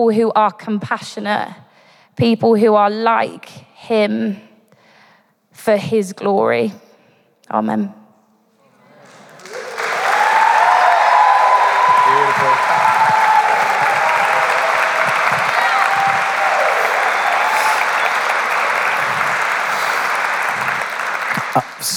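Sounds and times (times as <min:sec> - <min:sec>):
speech: 0:00.0 - 0:01.6, 0:02.2 - 0:04.5, 0:05.6 - 0:06.8, 0:07.5 - 0:08.0
sustained applause from a large audience: 0:08.7 - 0:21.9
faint cheers or voices: 0:09.0 - 0:21.9.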